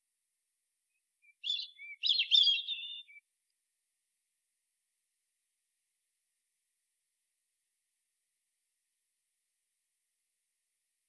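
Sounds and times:
European robin Erithacus rubecula singing: 0:01.2 - 0:03.2.

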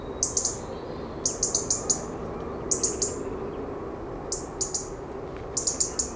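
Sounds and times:
European robin Erithacus rubecula clicking calls: 0:00.2 - 0:02.1, 0:02.7 - 0:03.3, 0:04.3 - 0:06.1.

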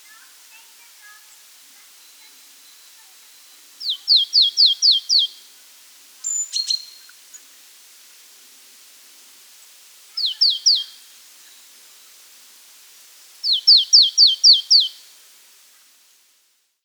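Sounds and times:
Marsh tit Poecile palustris giving rapid high downslurred notes: 0:01.3 - 0:05.5, 0:06.2 - 0:07.5, 0:10.2 - 0:11.6, 0:13.4 - 0:15.0.

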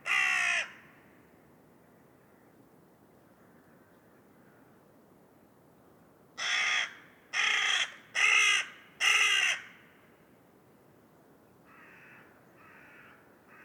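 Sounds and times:
carrion crow Corvus corone cawing: 0:00.0 - 0:00.8, 0:06.4 - 0:09.8, 0:11.7 - 0:13.6.

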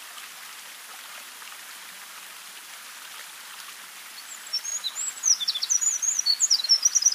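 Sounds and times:
faint background hiss: 0:00.0 - 0:07.1
Eurasian wren Troglodytes troglodytes singing: 0:04.3 - 0:07.1.

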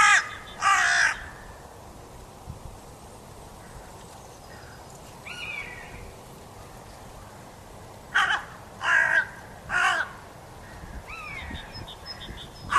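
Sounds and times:
carrion crow cawing: 0:00.0 - 0:01.4, 0:08.1 - 0:11.4, 0:12.2 - 0:12.7.

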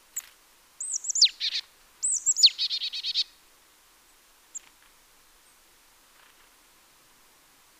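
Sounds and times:
marsh tit Poecile palustris calling: 0:00.2 - 0:03.3.

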